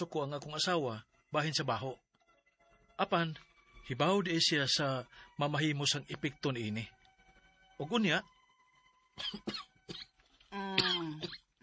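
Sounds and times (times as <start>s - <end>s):
speech: 0.0s - 2.0s, 3.0s - 7.0s, 7.8s - 8.3s, 9.2s - 11.4s
person coughing: 9.2s - 10.1s, 10.7s - 11.5s.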